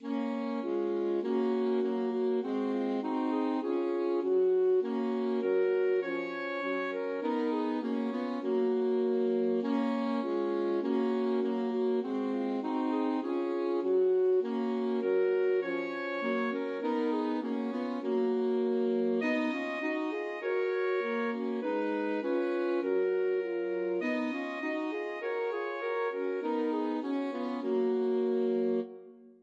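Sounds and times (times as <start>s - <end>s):
alto saxophone trio: 0.0s - 29.4s.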